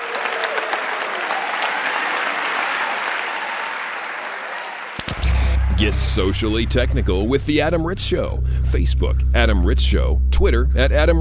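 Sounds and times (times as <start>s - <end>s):
sustained audience applause from a sizable crowd: 0.0s - 5.0s
brief sharp sound: 5.0s - 10.8s
speech: 5.8s - 11.1s.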